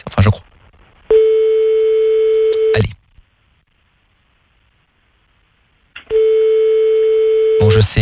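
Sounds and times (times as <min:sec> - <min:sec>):
speech: 0:00.2 - 0:00.4
telephone line tone while a number is being called late at night: 0:01.1 - 0:02.8, 0:06.1 - 0:07.9.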